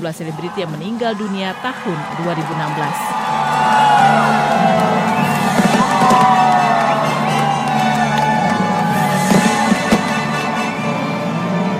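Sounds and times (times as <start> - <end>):
speech: 0.0 - 4.8
large crowd cheering and whooping at a New Year fireworks show in Sydney Australia: 0.0 - 11.7
sharp bangs of New Year fireworks: 4.5 - 10.7.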